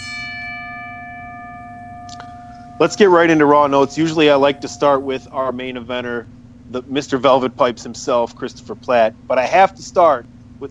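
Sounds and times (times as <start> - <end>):
struck bell ringing at the opening of a wrestling news show: 0.0 - 5.9
speech: 2.8 - 10.6.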